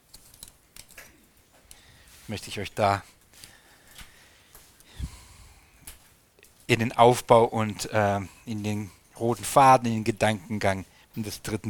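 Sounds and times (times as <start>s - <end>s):
plastic pens clicking and rattling as they are picked up: 0.1s - 1.1s
speech: 2.3s - 3.2s, 6.7s - 11.6s.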